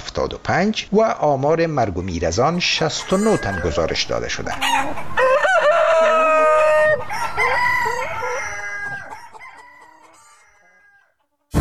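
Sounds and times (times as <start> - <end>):
speech: 0.2 - 5.2
chickens clucking: 2.0 - 11.5
rooster crowing: 2.9 - 11.2.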